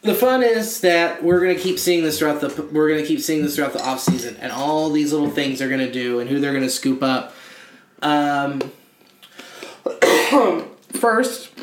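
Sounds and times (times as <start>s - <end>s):
speech: 0.0s - 7.4s, 8.0s - 8.8s, 9.8s - 11.6s
person coughing: 9.8s - 10.6s.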